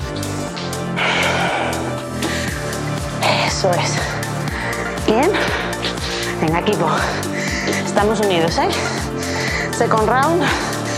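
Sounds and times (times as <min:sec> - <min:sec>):
heavy effortful breathing during exercise: 0:00.0 - 0:10.9
rhythmic music: 0:00.0 - 0:10.9
speech: 0:03.6 - 0:04.2, 0:05.1 - 0:05.6, 0:06.4 - 0:09.0, 0:09.8 - 0:10.7.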